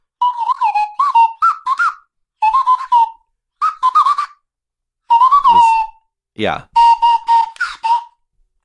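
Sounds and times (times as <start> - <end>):
slide whistle toots: 0.2 - 4.4, 5.0 - 6.1, 6.7 - 8.2
speech: 6.4 - 6.7.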